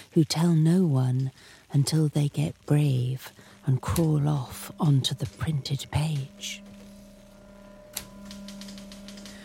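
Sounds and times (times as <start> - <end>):
low steady electrical hum: 0.0 - 9.4
speech: 0.2 - 6.7
typewriter keys clacking: 8.0 - 9.4.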